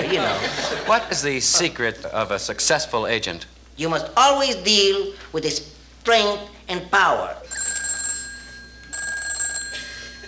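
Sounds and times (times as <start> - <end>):
laughter: 0.0 - 2.1
speech: 0.1 - 7.4
telephone ringing electronically: 7.4 - 10.2.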